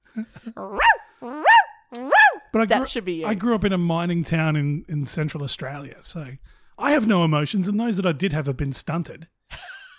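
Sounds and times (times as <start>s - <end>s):
speech: 0.2s - 1.3s, 2.5s - 9.7s
person imitating a barking dog: 0.6s - 2.5s.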